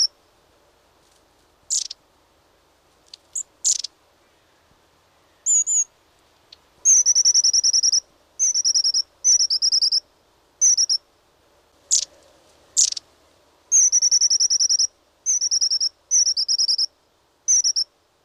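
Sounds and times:
long-tailed tit giving rapid high thin notes: 1.7s - 2.0s, 3.1s - 4.0s, 5.4s - 5.9s, 6.5s - 10.0s, 10.6s - 11.0s, 11.9s - 12.1s, 12.8s - 13.1s, 13.7s - 16.9s, 17.5s - 17.9s.

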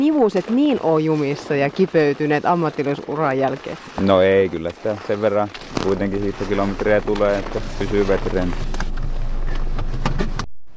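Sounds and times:
speech: 0.0s - 8.8s
low rumble and road noise inside a moving car: 3.9s - 10.5s.

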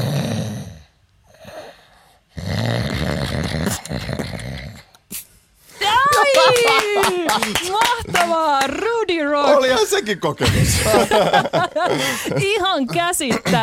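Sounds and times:
voice imitating contented cartoon-style snoring: 0.0s - 5.0s
laughter: 5.8s - 9.0s, 10.3s - 13.6s
speech: 10.0s - 13.6s.

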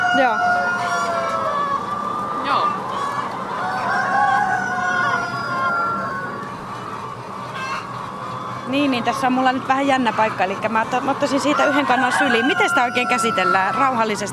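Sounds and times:
rooster crowing in a hen house: 0.0s - 6.8s, 11.2s - 14.3s
fowl clucking in an indoor henhouse: 0.0s - 14.3s
speech: 0.1s - 0.6s, 8.7s - 14.3s.

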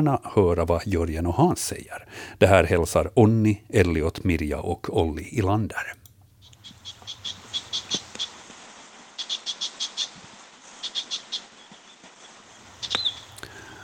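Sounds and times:
speech: 0.0s - 6.0s
Icterine Warbler giving high chattering calls: 6.4s - 8.4s, 9.2s - 13.5s.

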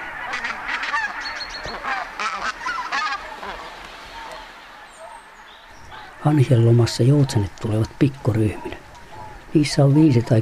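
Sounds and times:
tundra geese shrill cackling: 0.0s - 6.4s
bean geese deep chatter: 0.0s - 10.4s
speech: 6.2s - 8.8s, 9.5s - 10.4s.

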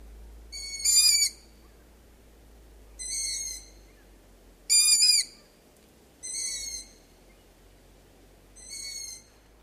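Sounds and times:
faint steady hiss: 0.0s - 9.6s
long-eared owl hooting: 0.5s - 1.8s, 3.0s - 4.0s, 4.7s - 5.6s, 6.2s - 7.2s, 8.6s - 9.5s.

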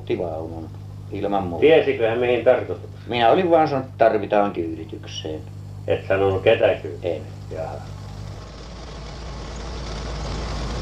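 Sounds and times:
speech: 0.1s - 8.0s
car engine and tyre rumble on a country road in Finland: 5.8s - 10.7s.

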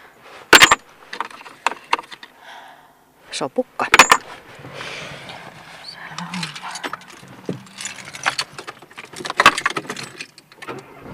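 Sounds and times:
speech: 3.4s - 4.1s
coin tapping as it settles: 3.9s - 4.2s
coin flipped and landing with metallic clatter: 4.0s - 4.2s, 6.2s - 10.5s.

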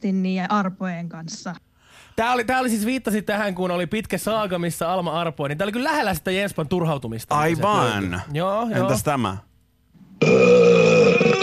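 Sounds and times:
speech: 0.0s - 9.5s, 10.2s - 11.2s
voiced droning burp: 10.2s - 11.4s.

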